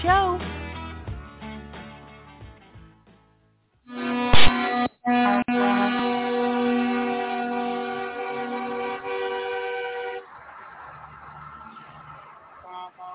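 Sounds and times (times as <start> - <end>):
vehicle horns blaring on a busy highway: 3.9 - 10.8, 12.6 - 13.1
rumbling highway traffic noise: 5.5 - 13.1.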